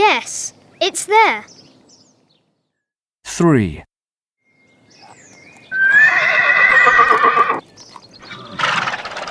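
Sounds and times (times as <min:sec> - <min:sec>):
speech: 0:00.2 - 0:01.5, 0:03.4 - 0:03.9
small white horse neighing on a farm on a sunny day: 0:05.7 - 0:07.6, 0:08.2 - 0:09.2.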